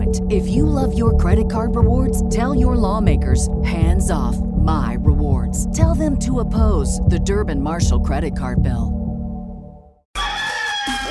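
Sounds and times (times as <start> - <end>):
low tone: 0.0 - 10.0
speech: 0.1 - 9.0
rooster crowing: 10.2 - 11.0.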